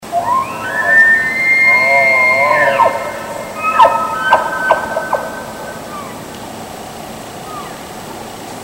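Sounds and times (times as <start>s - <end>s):
aggressive elk bugle: 0.1s - 6.1s.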